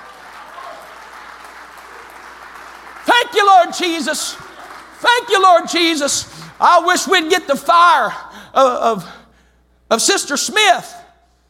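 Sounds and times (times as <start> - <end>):
congregation clapping hands: 0.0 - 7.2
speech: 3.3 - 9.2, 9.9 - 11.0.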